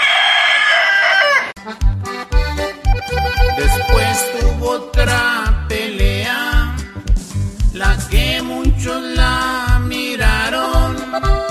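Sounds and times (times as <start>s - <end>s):
rooster crowing: 0.0s - 1.6s
rhythmic music with heavy bass thumps: 1.6s - 11.5s.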